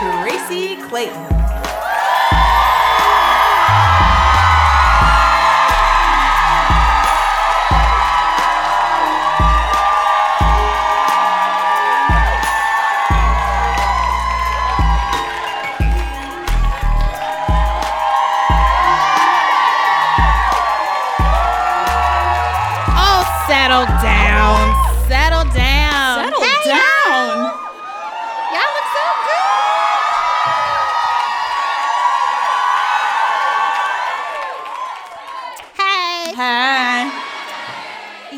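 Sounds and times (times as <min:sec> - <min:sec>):
thumping music beat: 0:00.0 - 0:26.6
large live crowd cheering, whooping and clapping: 0:00.0 - 0:38.3
speech: 0:00.9 - 0:01.4.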